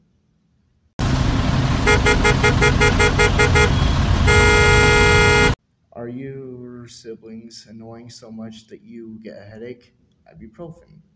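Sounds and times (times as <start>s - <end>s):
car engine rumbling: 1.0s - 5.6s
car horn honking: 1.8s - 5.6s
speech: 6.0s - 11.1s.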